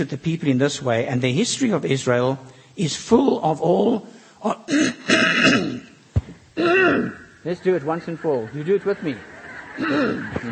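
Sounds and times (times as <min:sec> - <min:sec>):
speech: 0:00.0 - 0:05.6, 0:06.6 - 0:10.5
cough-like burst: 0:04.5 - 0:06.0, 0:06.6 - 0:07.4, 0:09.8 - 0:10.5
preacher clearing his throat: 0:04.5 - 0:06.0, 0:06.6 - 0:07.3, 0:09.8 - 0:10.3
laughter: 0:07.8 - 0:10.5.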